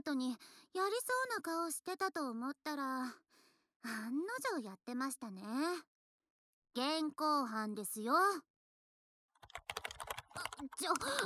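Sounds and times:
speech: 0.0s - 5.9s, 6.8s - 8.5s, 10.4s - 11.2s
typing on a computer keyboard: 9.4s - 11.2s.

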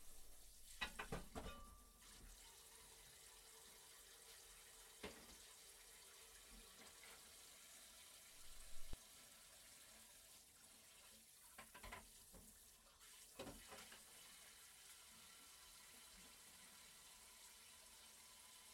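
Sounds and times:
water running from a tap while washing dishes: 0.0s - 18.7s
tableware clinking and clattering: 0.8s - 1.9s.

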